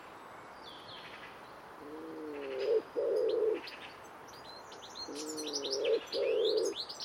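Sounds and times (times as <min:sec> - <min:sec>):
small birds chirping and twittering: 0:00.6 - 0:07.0
common wood pigeon cooing: 0:01.8 - 0:03.6, 0:05.1 - 0:06.8.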